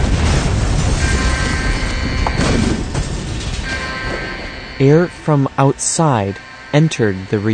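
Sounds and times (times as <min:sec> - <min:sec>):
sustained explosion boom: 0:00.0 - 0:05.5
faint metallic whine: 0:01.0 - 0:07.5
speech: 0:04.8 - 0:07.5.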